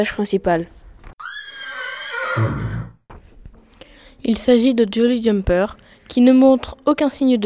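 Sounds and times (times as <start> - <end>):
speech: 0.0 - 0.8, 2.4 - 2.6, 4.2 - 7.4
horse neighing loudly: 1.2 - 3.0.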